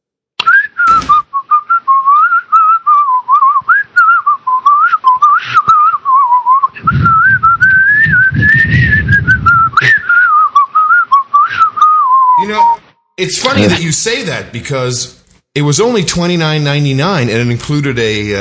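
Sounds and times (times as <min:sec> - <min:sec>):
person whistling a meandering wavering tune: 0:00.4 - 0:12.8
speech: 0:13.2 - 0:18.4.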